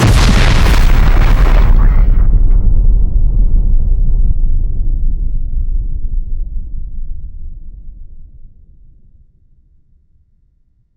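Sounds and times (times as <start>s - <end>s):
nuclear explosion: 0.0s - 6.9s.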